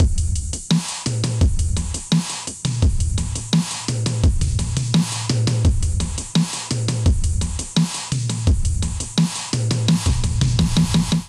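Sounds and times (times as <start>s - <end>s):
drum kit beat at 85 bpm: 0.0s - 11.2s.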